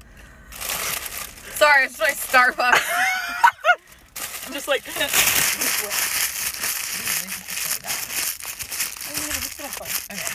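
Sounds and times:
paper crumpling: 0.6 - 2.5, 4.0 - 10.3
speech: 1.6 - 3.1, 4.5 - 6.2.

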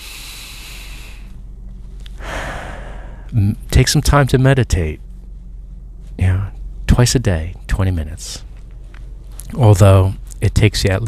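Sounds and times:
person exhaling long and airy close to the microphone: 0.0 - 1.3, 2.1 - 3.3
person inhaling with a strong rush close to the microphone: 0.0 - 1.3, 2.1 - 3.3
speech: 3.3 - 5.0, 7.0 - 8.5, 9.5 - 11.0.

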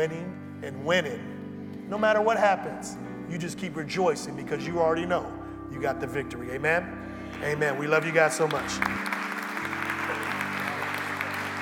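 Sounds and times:
speech: 0.0 - 9.2
audience applauding: 7.3 - 11.6.

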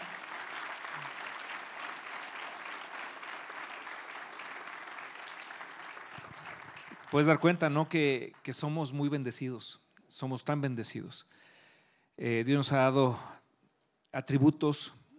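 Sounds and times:
sustained applause from a sizable audience: 0.0 - 7.6
speech: 7.1 - 11.5, 12.2 - 13.4, 14.1 - 15.0.

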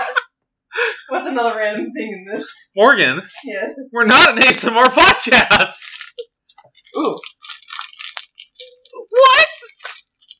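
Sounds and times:
speech: 1.2 - 6.3, 6.9 - 7.3
crinkling of an object pulled from a drawer: 5.5 - 10.3.

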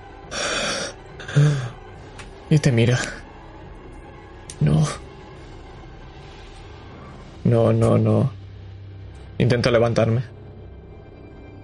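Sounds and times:
person gasping as they start breathing again: 0.3 - 1.8
speech: 1.4 - 1.6, 2.5 - 3.2, 7.5 - 8.4, 9.4 - 10.4.

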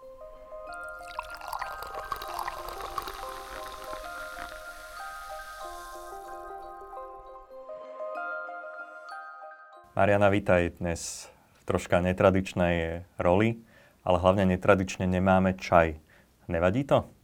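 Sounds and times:
sparkling drink pouring into a glass: 0.7 - 7.2
sparkling drink bubbles crackling: 0.8 - 6.6
speech: 10.0 - 17.2.

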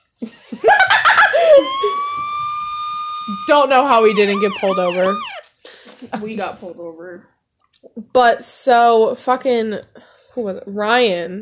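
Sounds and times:
laughter: 0.0 - 2.0
speech: 0.2 - 0.5, 3.5 - 5.3, 6.0 - 11.3
voice imitating a police siren: 1.3 - 5.5.

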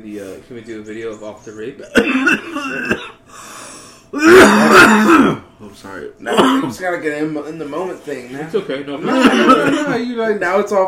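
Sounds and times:
speech: 0.0 - 3.2, 4.1 - 10.8
person coughing and clearing throat: 1.8 - 3.2, 4.2 - 5.4, 6.3 - 6.8, 9.0 - 10.0
laughter: 8.3 - 10.0.

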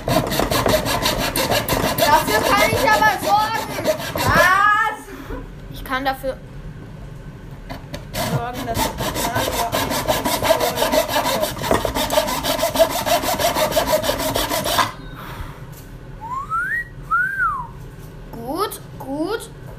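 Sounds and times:
hand saw rasping through wood: 0.0 - 4.7, 8.0 - 15.0
speech: 5.9 - 6.5, 8.4 - 10.0
short rising-and-falling whistles: 16.2 - 17.8.

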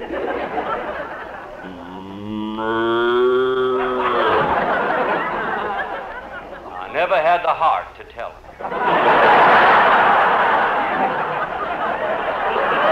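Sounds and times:
people chattering and chuckling: 0.0 - 7.0, 8.5 - 12.9
cow mooing: 1.6 - 5.8.

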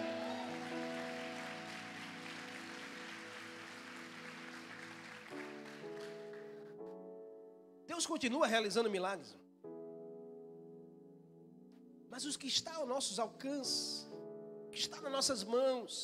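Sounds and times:
audience applauding: 0.0 - 6.7
sustained keyboard chords: 0.0 - 16.0
speech: 8.0 - 9.4, 12.2 - 14.1, 14.8 - 16.0.

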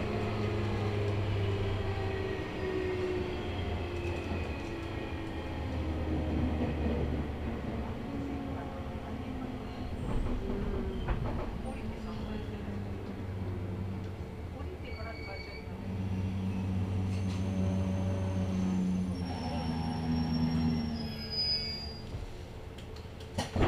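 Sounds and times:
local train engine and ventilation humming at a station: 0.0 - 23.6
short clanks and thumps: 10.0 - 11.8
brief bright squeal: 14.8 - 22.2.

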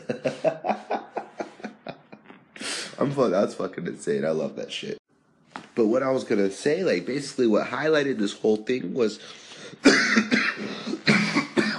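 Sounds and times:
laughter: 0.0 - 2.4
speech: 0.1 - 0.5, 3.0 - 5.0, 5.8 - 10.2
harsh raspy coughs: 9.6 - 11.7.

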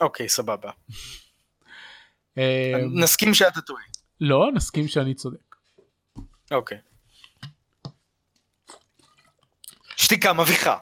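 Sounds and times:
speech: 0.0 - 1.2, 2.4 - 5.5, 6.2 - 6.9, 10.1 - 10.8
person drinking water, gulping and swallowing: 8.5 - 10.0.

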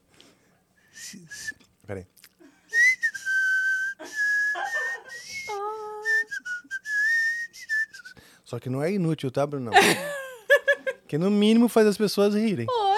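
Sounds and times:
person whistling a wavering breathy tune: 0.9 - 1.6, 2.7 - 8.2
speech: 1.1 - 2.2, 8.5 - 10.2, 11.1 - 12.8
laughter: 4.0 - 5.3, 9.8 - 11.0.

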